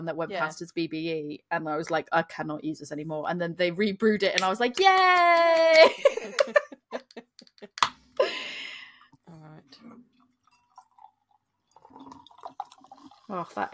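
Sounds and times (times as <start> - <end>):
speech: 0.0 - 8.4, 13.3 - 13.7
laughter: 5.4 - 7.8
stout beer pouring into a glass: 10.1 - 13.7.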